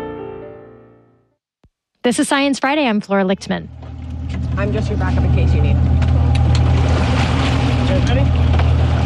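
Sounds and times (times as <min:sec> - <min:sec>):
speech: 0:02.0 - 0:03.8, 0:04.6 - 0:06.0, 0:07.9 - 0:08.6
research boat engine droning at sea: 0:03.0 - 0:09.0
water washing over a boat at sea: 0:03.4 - 0:09.0
wind at sea: 0:03.4 - 0:09.0.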